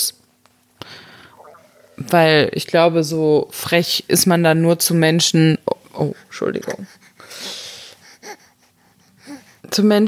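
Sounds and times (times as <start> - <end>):
speech: 2.0 - 7.0, 9.7 - 10.0
heavy wheezing breathing: 6.8 - 9.6.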